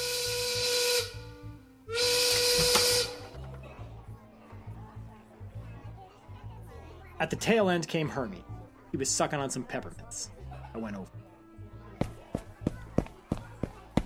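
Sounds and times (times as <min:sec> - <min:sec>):
factory break whistle blowing loud hissing blasts: 0:00.0 - 0:03.4
crowd of voices chattering: 0:02.3 - 0:14.0
speech: 0:07.2 - 0:11.2.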